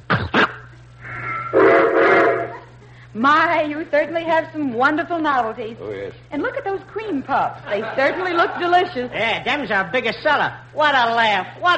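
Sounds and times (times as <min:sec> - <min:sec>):
shrill two-toned toy electric train whistle: 0:01.3 - 0:02.6
speech: 0:03.1 - 0:11.7
laughter: 0:07.6 - 0:09.1.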